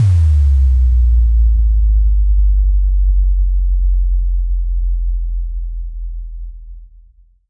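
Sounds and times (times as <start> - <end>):
bass impact: 0.0 - 7.2.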